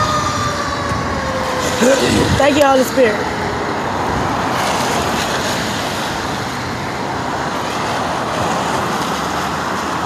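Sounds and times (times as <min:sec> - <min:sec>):
fire truck heavy engine rumble: 0:00.0 - 0:07.2
fire truck siren wailing as it passes: 0:00.0 - 0:10.0
speech: 0:01.8 - 0:03.4.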